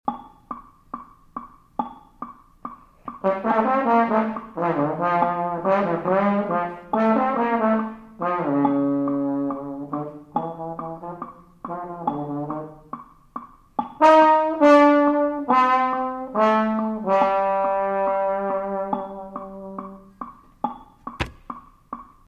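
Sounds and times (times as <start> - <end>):
trombone playing Latin jazz: 3.2 - 12.9, 14.0 - 20.1.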